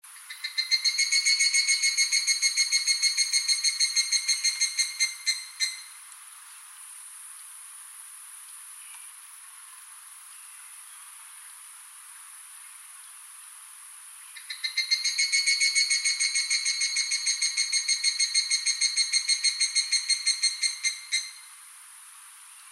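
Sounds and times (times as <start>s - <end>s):
higurashi cicada calling: 0.1s - 9.2s, 14.2s - 21.8s.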